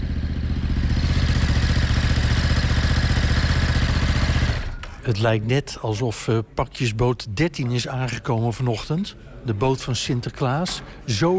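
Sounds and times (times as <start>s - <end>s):
motorcycle engine running: 0.0s - 4.8s
speech: 5.1s - 11.3s.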